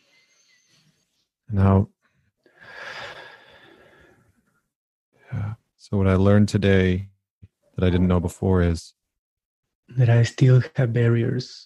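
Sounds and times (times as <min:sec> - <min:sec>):
speech: 0:01.5 - 0:01.9, 0:05.9 - 0:07.1, 0:07.8 - 0:09.0, 0:09.9 - 0:11.6
deep slow breath during a guided session: 0:02.0 - 0:04.4.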